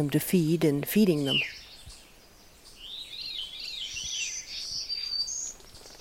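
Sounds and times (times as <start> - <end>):
speech: 0.0 - 1.6
wild birds singing and chirping in a woodland: 0.0 - 5.9.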